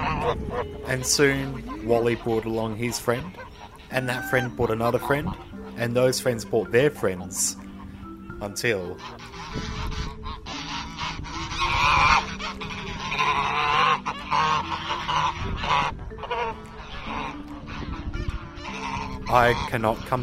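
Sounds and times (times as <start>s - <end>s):
flock of large geese honking in a park: 0.0s - 20.2s
speech: 0.2s - 7.6s, 8.4s - 10.1s, 19.3s - 20.2s.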